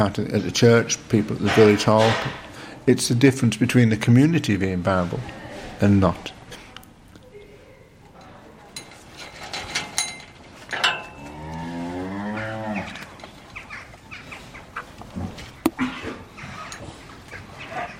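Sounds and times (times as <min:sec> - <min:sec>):
speech: 0:00.0 - 0:06.4
cow mooing on a family farm: 0:11.2 - 0:13.0.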